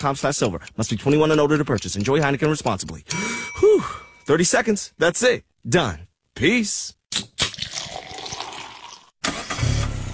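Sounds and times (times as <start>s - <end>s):
speech: 0.0s - 7.3s
car engine starting: 9.2s - 10.1s.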